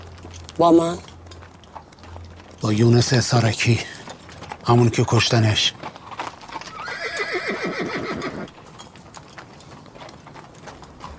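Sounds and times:
horse hooves clopping: 0.0 - 11.1
speech: 0.6 - 1.1, 2.6 - 4.0, 4.7 - 5.9
horse whinnying as rider dismounts: 6.5 - 8.6.

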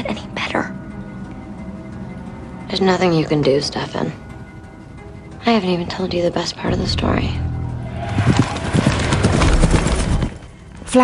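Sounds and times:
speech: 2.7 - 4.2, 5.5 - 7.5
horse hooves clip-clopping through a forest: 8.4 - 10.5.

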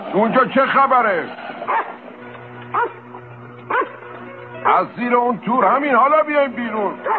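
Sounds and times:
speech: 0.1 - 1.8, 4.7 - 7.1
small dog barking: 1.7 - 1.9, 2.7 - 3.0, 3.7 - 4.0.

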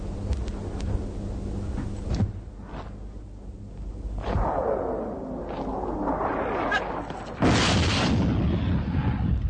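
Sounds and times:
constant low rumble: 0.0 - 9.4
heavy explosions booming near a car: 4.2 - 9.4.

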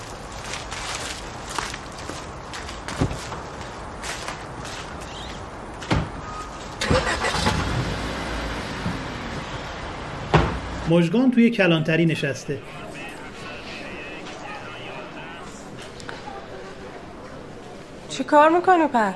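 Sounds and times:
car engine starting before driving off: 6.8 - 10.9
clunks and knocks: 10.2 - 10.8
speech: 10.9 - 12.8, 18.2 - 19.1.

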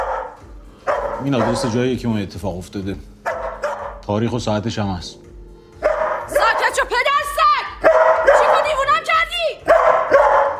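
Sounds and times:
dog barking and yelping: 0.0 - 1.8, 3.2 - 4.0, 5.8 - 10.5
speech: 1.2 - 3.2, 4.1 - 5.2.

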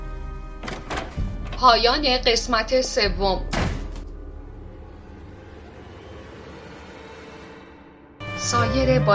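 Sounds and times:
door being shut: 0.6 - 1.6, 3.5 - 4.1
speech: 1.6 - 3.6, 8.6 - 9.1.

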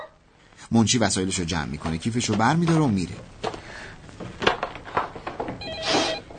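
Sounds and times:
speech: 0.7 - 3.5
knocks and thumps from objects being handled: 1.8 - 5.7
telephone ringing with a short bright electronic trill: 5.6 - 6.3.

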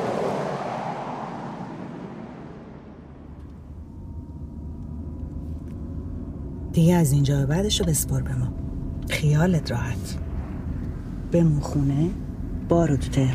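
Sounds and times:
vehicle whooshing past: 0.0 - 3.8
low road rumble of a vehicle driving: 0.0 - 13.3
speech: 6.8 - 10.2, 11.3 - 13.3.

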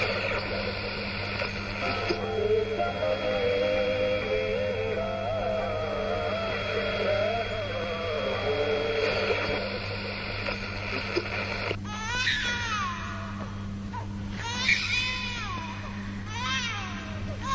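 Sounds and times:
faint garbled broadcast voices: 0.0 - 11.8
radio being tuned across various world radio stations: 0.0 - 11.8
crackly static-filled noise: 0.0 - 17.5
steady low hum: 0.0 - 17.5.

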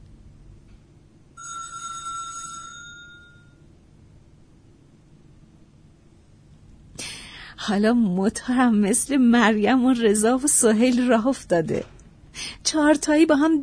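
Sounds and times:
doorbell ringing at the door of a house: 1.4 - 3.6
speech: 7.7 - 12.0, 12.7 - 13.6.

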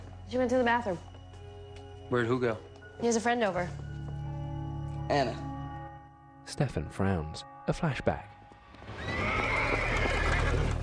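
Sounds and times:
speech: 0.3 - 1.1, 2.1 - 3.8, 5.1 - 5.5, 6.5 - 8.3
horse tied to a wooden post neighing: 8.9 - 10.8.

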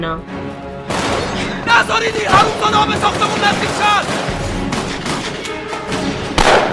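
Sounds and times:
speech: 0.0 - 4.4
gunshot: 0.9 - 1.4, 3.2 - 5.4, 6.4 - 6.7.

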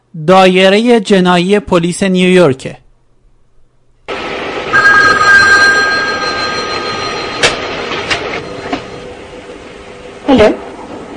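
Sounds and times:
speech: 0.2 - 2.8, 10.3 - 10.6
telephone ringing with bright bell tone: 4.7 - 9.3.

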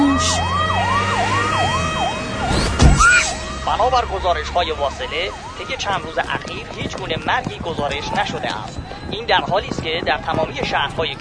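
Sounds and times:
police siren sound effect wailing: 0.0 - 7.4
low thump: 2.5 - 3.3
speech: 3.8 - 11.2.

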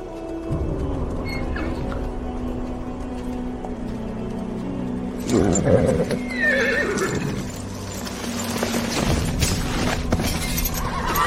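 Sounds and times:
clip-clopping horse hooves in a video game: 0.0 - 11.2
horses ridden by soldiers through a forest whinnying and neighing in a video game: 5.2 - 11.2.

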